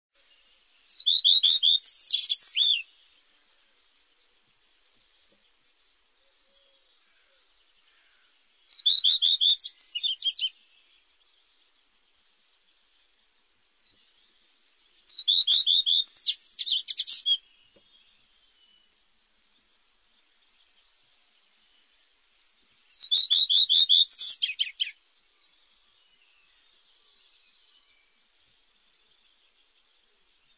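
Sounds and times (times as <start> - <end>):
white-fronted redstart singing: 0.2 - 3.2, 6.7 - 11.8, 13.8 - 18.9, 22.9 - 30.5.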